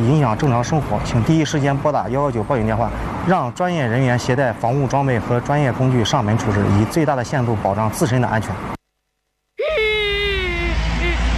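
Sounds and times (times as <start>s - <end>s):
speech: 0.0s - 8.8s
voice imitating a lost cartoon waste battery crying: 9.6s - 11.3s.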